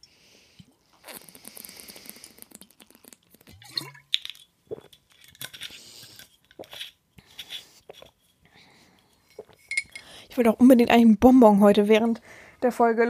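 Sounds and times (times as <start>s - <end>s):
slurping sips from a drinking glass: 0.2s - 3.9s, 4.7s - 10.1s
drinking glass clinks and taps as it is handled: 9.3s - 10.1s
speech: 10.4s - 13.0s.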